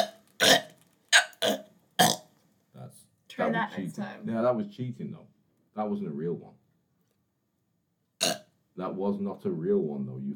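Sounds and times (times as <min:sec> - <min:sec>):
short throaty burps: 0:00.0 - 0:02.3, 0:08.2 - 0:08.5
speech: 0:03.6 - 0:06.6, 0:08.8 - 0:10.3.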